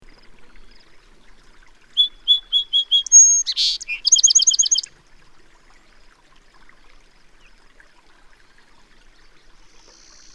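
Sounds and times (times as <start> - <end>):
bird song of whistles and rasping bursts: 0.1 - 4.9, 8.4 - 10.3.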